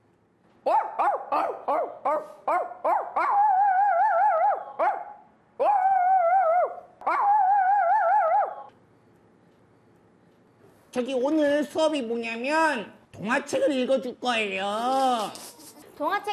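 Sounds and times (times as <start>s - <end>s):
person imitating short yappy baby-puppy barks: 0.7s - 8.7s
person imitating drawn-out howling whines of a big dog: 2.9s - 4.9s, 5.6s - 8.7s
speech: 11.0s - 16.3s.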